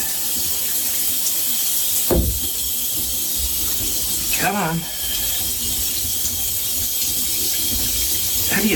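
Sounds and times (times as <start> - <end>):
water from a running shower hissing: 0.0 - 8.7
speech: 4.4 - 5.0.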